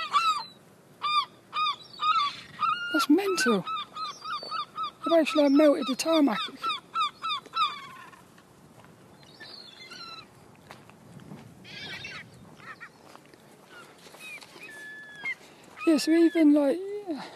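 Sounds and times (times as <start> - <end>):
seagulls crying: 0.0 - 8.3, 9.3 - 10.4, 11.6 - 17.3
outdoor background: 0.0 - 17.3
speech: 3.0 - 3.8, 5.1 - 6.7, 15.9 - 17.3.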